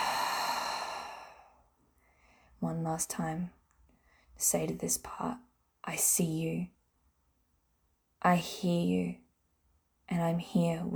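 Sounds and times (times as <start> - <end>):
slow breath out through the mouth during a deep-breathing exercise: 0.0 - 1.4
speech: 2.6 - 3.6, 4.4 - 6.8, 8.2 - 9.2, 10.1 - 10.9.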